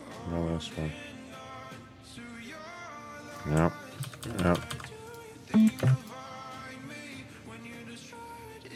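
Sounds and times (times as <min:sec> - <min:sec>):
speech: 0:00.2 - 0:01.1, 0:03.4 - 0:04.9, 0:05.5 - 0:06.1
phone line low beeps: 0:05.6 - 0:06.0.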